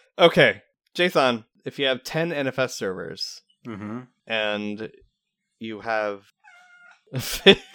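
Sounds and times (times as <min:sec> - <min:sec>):
speech: 0:00.2 - 0:05.0, 0:05.6 - 0:06.4, 0:07.1 - 0:07.7
cat meowing loudly: 0:06.5 - 0:07.0
laughter: 0:07.2 - 0:07.7.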